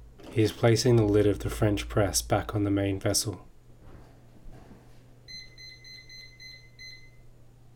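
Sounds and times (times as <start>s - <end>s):
steady low hum: 0.0s - 7.7s
speech: 0.4s - 3.5s
kitchen timer being set and beeping: 5.3s - 7.2s.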